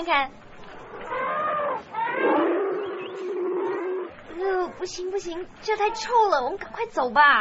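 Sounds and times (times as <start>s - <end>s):
speech: 0.0s - 0.4s, 4.4s - 7.3s
elephants calling in a zoo's elephant house: 0.7s - 6.2s.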